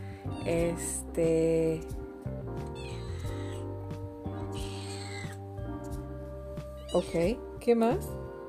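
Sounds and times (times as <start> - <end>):
speech: 0.4 - 2.0, 6.9 - 8.2
female domestic cat meowing: 2.7 - 3.7, 4.4 - 5.5, 6.6 - 7.3.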